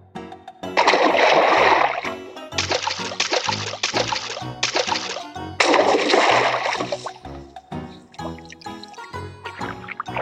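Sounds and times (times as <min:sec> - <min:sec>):
soft musical backdrop: 0:00.0 - 0:10.1
mother duck and ducklings splashing in water: 0:00.8 - 0:07.2.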